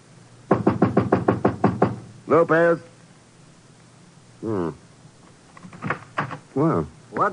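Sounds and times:
loud knocks on an apartment door: 0.5s - 2.1s
speech: 2.3s - 2.9s, 4.4s - 4.8s, 6.6s - 7.3s.

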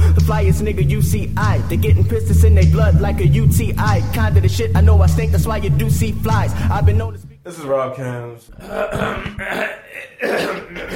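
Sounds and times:
speech: 0.4s - 10.9s
people clearing throats: 8.5s - 10.9s.

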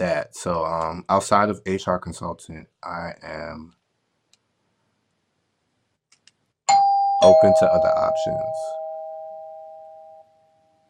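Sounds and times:
speech: 0.0s - 3.8s, 7.2s - 8.8s
doorbell electronic chime tone: 6.7s - 10.8s.

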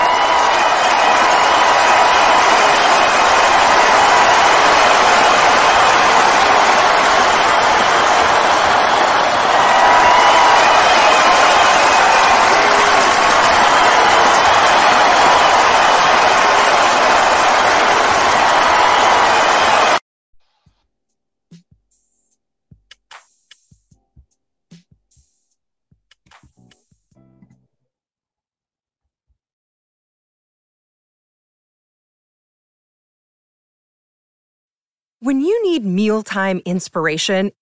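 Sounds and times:
large crowd cheering and applauding: 0.0s - 20.0s
speech: 35.3s - 37.6s.

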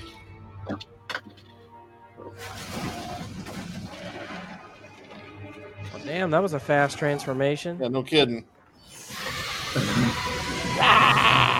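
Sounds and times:
speech: 6.1s - 8.5s
loud piercing shriek, high and harsh: 8.8s - 11.5s
lower wavering creature cry: 9.6s - 11.5s.

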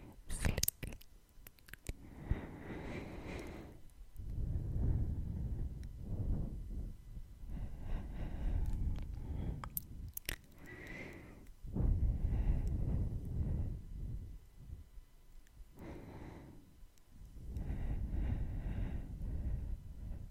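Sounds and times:
sharp tongue clicks: 0.3s - 2.0s, 9.0s - 11.0s
soft wet smacks: 0.4s - 2.0s, 8.6s - 10.6s
heavy breaths: 2.0s - 14.9s, 15.6s - 20.3s.

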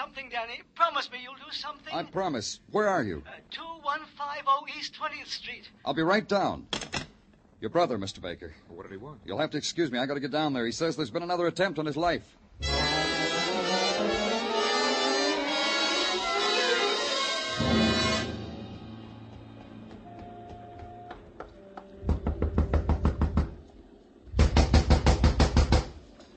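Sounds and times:
busier sound: 0.0s - 26.3s
speech: 0.2s - 7.0s, 7.6s - 12.8s
gentle rapid knocking: 19.3s - 23.6s, 24.4s - 26.0s.

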